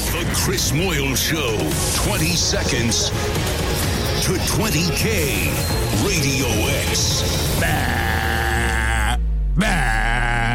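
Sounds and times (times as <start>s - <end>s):
speech: 0.3s - 8.2s
aggressive sheep bleating: 7.6s - 10.5s.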